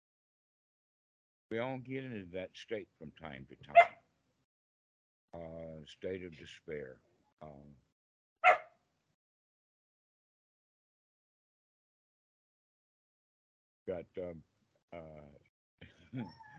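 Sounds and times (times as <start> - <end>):
speech: 1.5 - 4.0, 5.3 - 7.8, 13.9 - 15.3, 16.1 - 16.4
two big dogs barking at a door: 3.7 - 4.0, 8.4 - 8.7
two big dogs whimpering and yelping at a door: 16.2 - 16.5.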